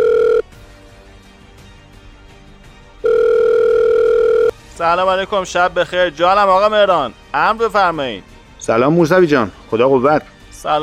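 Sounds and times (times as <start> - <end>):
phone line ringback tone through the receiver: 0.0 - 0.4, 3.0 - 4.6
speech: 4.8 - 10.8.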